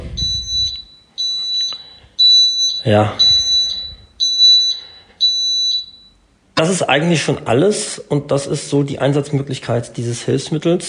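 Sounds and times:
low rumble: 0.0 - 1.0, 3.1 - 4.4
small electronic item-finder receiver giving shrill high-pitched beeps as its button is held: 0.1 - 6.1
speech: 2.8 - 3.3, 6.6 - 10.8.

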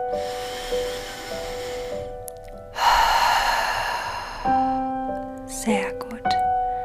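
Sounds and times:
slow deep breath in and out during a meditation: 0.0 - 5.2
soft sustained calm music tones: 0.0 - 6.8.

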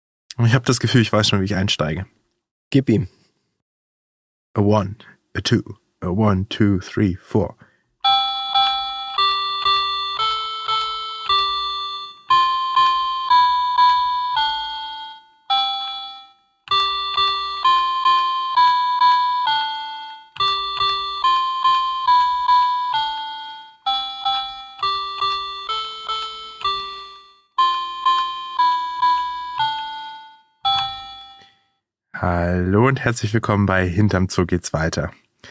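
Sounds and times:
speech: 0.4 - 3.2, 4.6 - 7.7, 32.9 - 35.2
small electronic toy piano attached to a little book played by an adult: 8.0 - 31.8.

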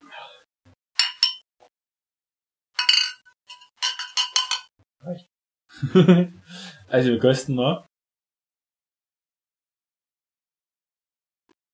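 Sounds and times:
glasses clinking in a toast: 1.0 - 1.4, 2.8 - 4.7
speech: 5.0 - 7.9
laughter: 5.7 - 6.4.

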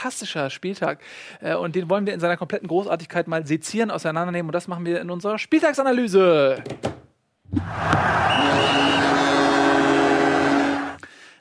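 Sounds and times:
speech: 0.0 - 9.2
long loud stadium goal horn blast: 7.9 - 11.0.

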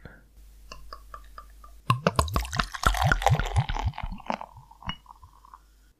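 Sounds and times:
Tuborg pale pilsner beer glugging and splashing into a glass: 1.9 - 5.6.

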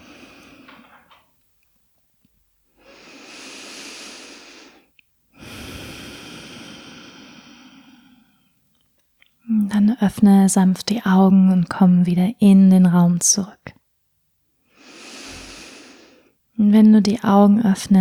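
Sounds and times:
deep breathing in and out: 0.0 - 1.1, 2.8 - 8.6, 14.7 - 16.4
speech: 9.9 - 13.6, 16.7 - 17.9.

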